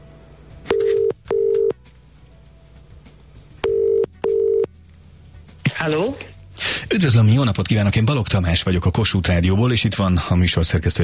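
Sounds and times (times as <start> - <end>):
telephone dialing tones calling a radio quiz winner: 0.7 - 1.8, 3.6 - 4.7
speech: 7.0 - 11.0.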